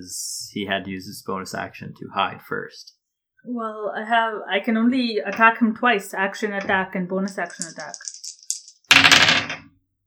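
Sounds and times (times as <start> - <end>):
speech: 0.0 - 8.1
dice rolling on a hard tabletop: 6.6 - 9.7.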